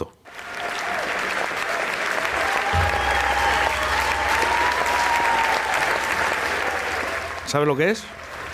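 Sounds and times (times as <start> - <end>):
large concert crowd applause: 0.3 - 8.5
people shouting: 2.5 - 7.3
whistles: 2.7 - 5.8
low hum: 2.7 - 8.5
speech: 7.5 - 8.2.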